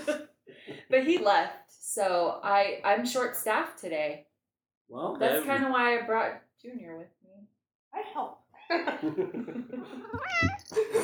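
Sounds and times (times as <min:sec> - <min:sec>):
laughter: 0:00.0 - 0:01.2, 0:08.7 - 0:11.0
speech: 0:00.9 - 0:04.3, 0:04.9 - 0:07.2, 0:07.9 - 0:11.0
cat meowing: 0:09.9 - 0:10.8.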